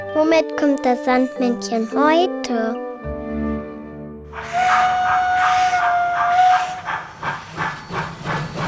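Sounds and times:
speech: 0:00.3 - 0:02.9
steam locomotive whistle: 0:04.3 - 0:08.6.

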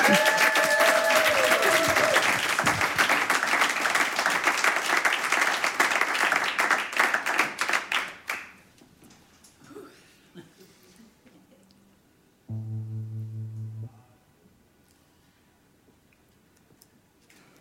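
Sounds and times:
audience applause: 0:00.0 - 0:08.4.

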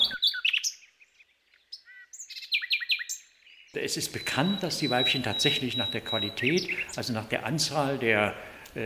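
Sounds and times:
nightingale singing: 0:00.0 - 0:08.5
speech: 0:03.7 - 0:08.8.

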